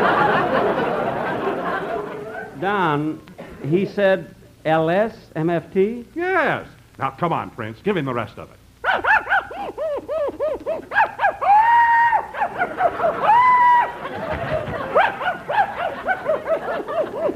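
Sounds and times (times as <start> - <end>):
laughter: 0.0 - 2.6, 8.9 - 17.3
speech: 2.6 - 9.1
dog barking in high yips: 8.8 - 9.7, 10.9 - 11.4, 12.3 - 13.1, 14.9 - 16.4
dog whining howls: 8.8 - 14.2, 14.8 - 17.3.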